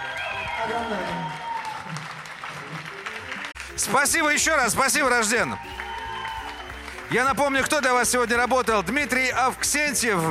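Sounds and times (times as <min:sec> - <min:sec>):
whistles: 0:00.0 - 0:01.9, 0:05.4 - 0:07.2
crowd audience applauding: 0:00.0 - 0:10.2
speech: 0:00.6 - 0:02.1, 0:03.8 - 0:05.9, 0:07.1 - 0:10.2.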